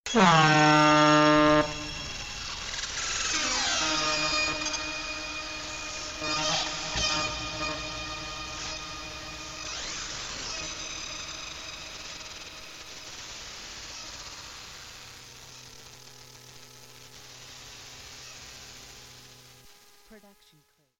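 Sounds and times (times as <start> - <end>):
designed scary air horn screech: 0.0 - 13.1.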